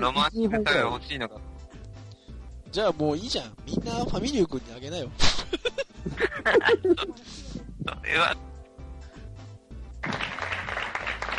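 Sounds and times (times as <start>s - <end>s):
speech: 0.0s - 1.5s, 2.7s - 5.3s, 6.0s - 8.5s
laughter: 5.4s - 7.3s
applause: 10.0s - 11.3s.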